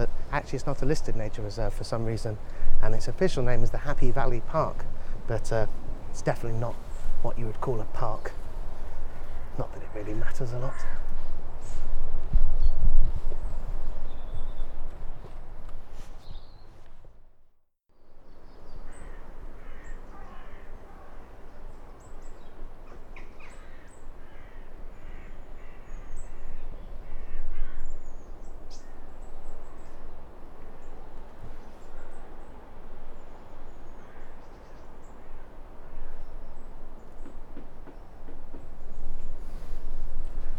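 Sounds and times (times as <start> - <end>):
wind and rustling in woodland: 0.0 - 40.5
speech: 0.4 - 8.4, 9.6 - 11.0
bird calls in woodland: 1.5 - 11.9, 12.6 - 15.4, 16.2 - 16.8, 18.3 - 40.5
crows cawing in woodland: 8.8 - 9.7, 10.6 - 11.3, 18.8 - 21.5, 23.1 - 28.1, 33.9 - 36.3.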